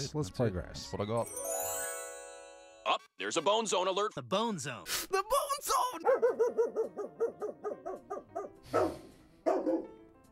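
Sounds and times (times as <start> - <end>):
speech: 0.0 - 1.6, 3.2 - 7.0
dog yipping and barking: 6.0 - 9.9.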